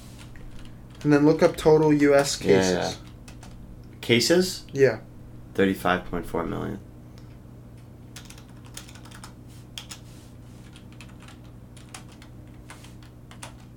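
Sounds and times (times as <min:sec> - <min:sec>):
steady low hum: 0:00.0 - 0:13.7
typing on a computer keyboard: 0:00.3 - 0:01.1, 0:03.0 - 0:03.6, 0:08.2 - 0:10.0, 0:10.6 - 0:13.7
speech: 0:01.0 - 0:03.0, 0:04.0 - 0:06.9.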